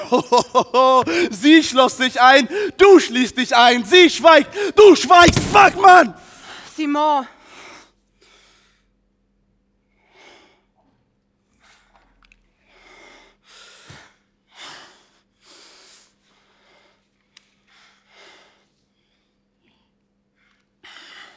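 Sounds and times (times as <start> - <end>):
person breathing in uneven gasping and wheezy bursts: 0.0 - 1.4, 2.4 - 2.8, 4.5 - 4.9
laughter: 0.0 - 7.2
speech: 0.1 - 6.2, 6.8 - 7.4.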